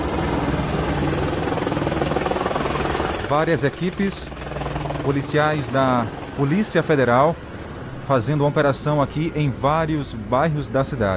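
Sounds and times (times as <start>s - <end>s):
helicopter flying overhead: 0.0s - 11.1s
speech: 3.3s - 7.4s, 8.1s - 11.1s.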